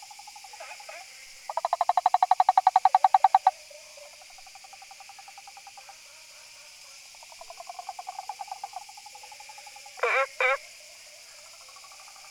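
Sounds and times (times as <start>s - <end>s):
frog calling in rapid pulsed trains: 0.3s - 5.9s, 7.2s - 10.6s.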